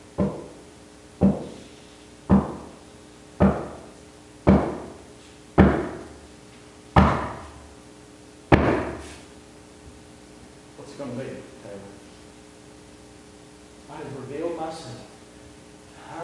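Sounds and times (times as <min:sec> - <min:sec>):
heavy knocking on a wooden door: 0:00.2 - 0:00.6, 0:01.2 - 0:01.6, 0:02.3 - 0:02.8, 0:03.4 - 0:05.0, 0:05.6 - 0:06.1, 0:07.0 - 0:07.5, 0:08.5 - 0:09.0
speech: 0:11.0 - 0:12.1, 0:14.0 - 0:15.1.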